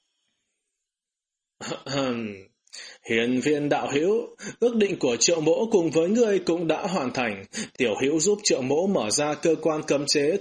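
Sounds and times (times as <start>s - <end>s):
light stern throat-clearing cough: 1.6s - 2.1s
speech: 1.6s - 10.3s.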